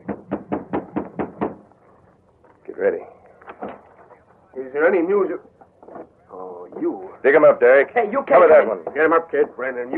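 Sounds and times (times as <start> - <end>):
knocking on the wooden door of a house: 0.0 - 1.6
speech: 4.8 - 5.5, 7.2 - 9.9.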